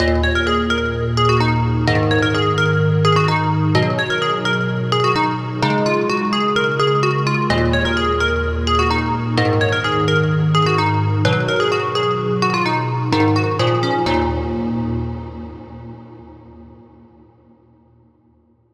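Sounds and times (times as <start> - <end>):
bell: 0.0 - 15.7.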